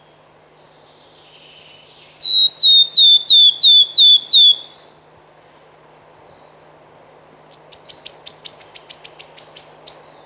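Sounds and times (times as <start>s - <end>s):
wood warbler piping song: 0.0s - 5.0s, 6.3s - 6.7s, 7.5s - 10.2s.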